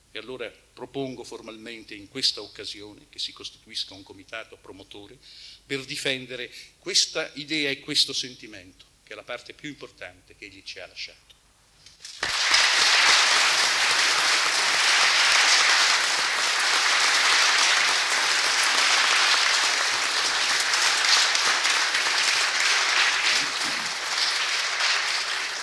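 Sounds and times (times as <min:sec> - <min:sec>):
speech: 0:00.2 - 0:11.4
audience applause at a commemoration event: 0:12.0 - 0:25.6.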